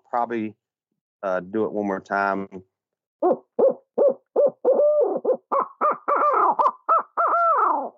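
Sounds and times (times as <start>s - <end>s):
speech: 0.1s - 0.6s, 1.2s - 3.5s
owl locator call caterwaul used for turkey hunting: 3.2s - 7.9s.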